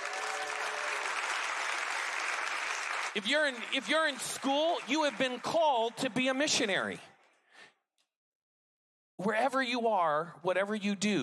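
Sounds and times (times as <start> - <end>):
audience clapping for middle schoolers: 0.0 - 7.0
speech: 3.1 - 7.1, 9.2 - 11.2.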